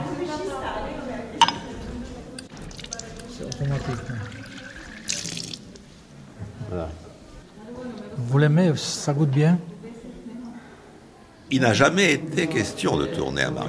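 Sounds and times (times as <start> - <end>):
people talking quietly: 0.0 - 13.6
tap water running into a cup: 2.4 - 5.8
speech: 3.6 - 4.6, 6.7 - 7.0, 8.3 - 9.7, 11.5 - 13.6.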